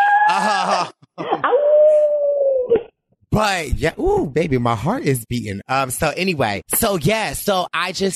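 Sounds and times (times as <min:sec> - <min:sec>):
speech: 0:00.4 - 0:01.2, 0:03.4 - 0:08.1
dog or wolf howling: 0:01.4 - 0:02.7.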